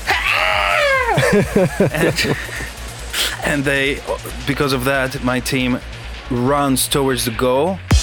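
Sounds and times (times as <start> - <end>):
person imitating a hawk's scream during a team ball game: 0.0 - 1.4
laughter: 0.8 - 3.4
speech: 1.3 - 2.6, 3.4 - 7.9.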